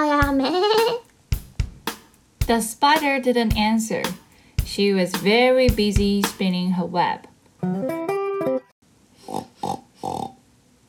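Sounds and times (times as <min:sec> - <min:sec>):
little pig oinking: 0:00.0 - 0:01.0, 0:09.2 - 0:10.4
speech: 0:02.5 - 0:08.0.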